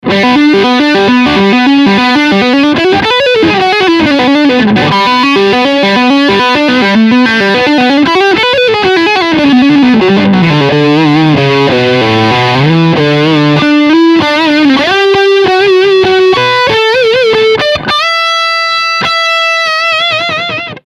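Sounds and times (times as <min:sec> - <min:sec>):
overdrive guitar lick: 0:00.0 - 0:20.8.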